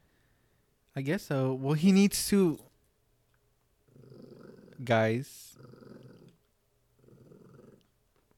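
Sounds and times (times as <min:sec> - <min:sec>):
speech: 0:01.0 - 0:02.7, 0:04.8 - 0:05.8
dog growling at a cat: 0:03.8 - 0:08.0.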